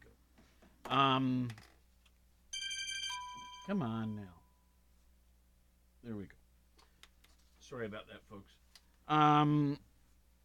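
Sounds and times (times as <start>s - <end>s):
speech: 0.9s - 1.7s, 3.7s - 4.4s, 6.0s - 6.4s, 7.7s - 9.9s
phone ringing with electronic ringtone: 2.5s - 4.6s.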